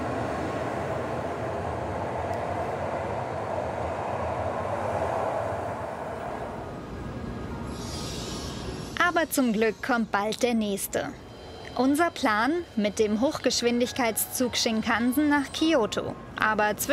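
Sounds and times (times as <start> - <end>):
train rumbling as it leaves the station: 0.0 - 16.9
speech: 9.1 - 11.2, 11.8 - 16.9.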